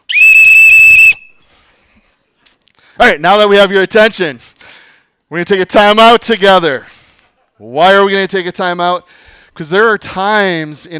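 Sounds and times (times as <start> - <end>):
loud shrill whistle blast: 0.0 - 1.5
speech: 3.0 - 4.5, 5.3 - 6.9, 7.6 - 10.9.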